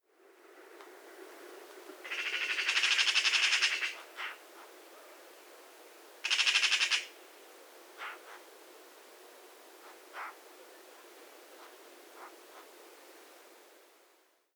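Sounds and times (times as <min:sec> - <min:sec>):
Eurasian magpie harsh rattling chatter calls: 0:02.0 - 0:04.7, 0:06.2 - 0:07.2, 0:08.0 - 0:08.4, 0:10.1 - 0:10.4
Eurasian magpie short single squawks: 0:02.1 - 0:04.4, 0:06.3 - 0:07.1, 0:08.0 - 0:08.3, 0:10.2 - 0:10.4.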